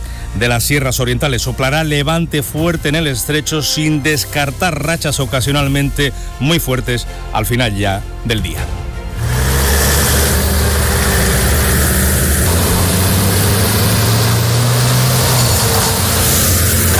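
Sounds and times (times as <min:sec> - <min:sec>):
military emergency unit truck engines idling: 0:00.0 - 0:04.9, 0:08.9 - 0:16.9
speech: 0:00.4 - 0:08.8.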